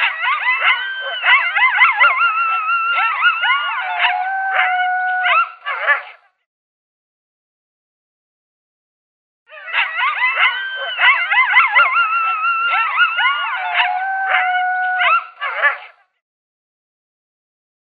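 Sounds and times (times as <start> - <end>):
coyote locator call of yips and howls: 0.0 - 6.2, 9.5 - 16.0.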